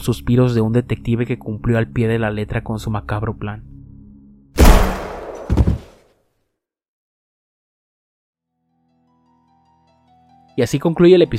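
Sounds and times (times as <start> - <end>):
speech: 0.0 - 3.7, 10.6 - 11.3
dull thump: 4.6 - 5.9
loud gunshot: 4.6 - 5.9.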